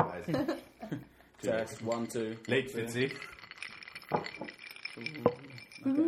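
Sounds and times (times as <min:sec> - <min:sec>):
speech: 0:00.0 - 0:03.4, 0:05.0 - 0:06.0
ice cubes clinking in glasses: 0:01.4 - 0:06.0.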